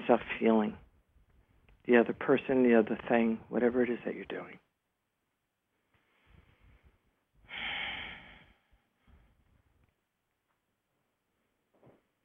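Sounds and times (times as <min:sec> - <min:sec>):
speech: 0:00.1 - 0:00.8, 0:01.8 - 0:04.6
quieter soft breaths: 0:05.7 - 0:09.8
deep breathing during a breathing exercise: 0:05.9 - 0:09.5.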